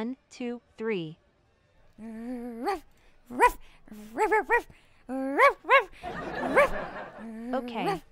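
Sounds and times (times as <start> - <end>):
speech: 0.0 - 1.2, 2.0 - 8.0
person on all fours barking like a dog: 2.1 - 7.0, 7.6 - 8.0
laughter: 5.7 - 8.0.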